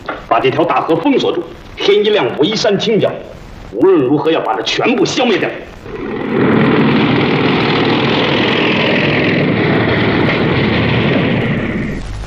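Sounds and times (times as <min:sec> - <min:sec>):
speech: 0:00.3 - 0:06.7
motorcycle engines roaring: 0:05.8 - 0:12.0.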